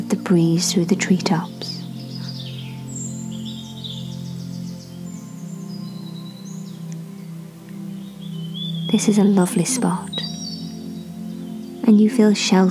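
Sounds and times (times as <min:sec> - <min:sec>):
speech: 0:00.1 - 0:01.7, 0:09.0 - 0:10.3, 0:11.9 - 0:12.6
birds chirping and whistling: 0:00.6 - 0:12.6.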